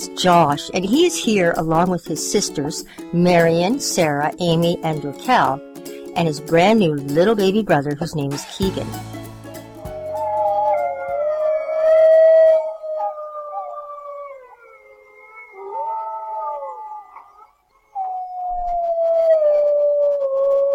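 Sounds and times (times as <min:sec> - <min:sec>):
speech: 0:00.0 - 0:09.3
pack of gray wolves howling: 0:10.0 - 0:20.7.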